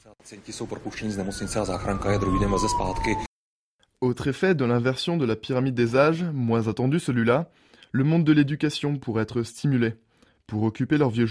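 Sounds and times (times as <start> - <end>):
speech: 0.0 - 3.3, 4.0 - 11.2
ambulance siren wailing: 0.5 - 3.3.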